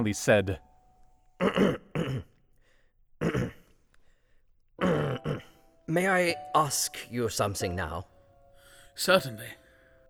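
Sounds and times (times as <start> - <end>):
speech: 0.0 - 0.7, 1.4 - 2.3, 5.9 - 8.1, 9.0 - 9.6
man clearing his throat: 1.4 - 2.4, 3.2 - 3.7, 4.8 - 5.6.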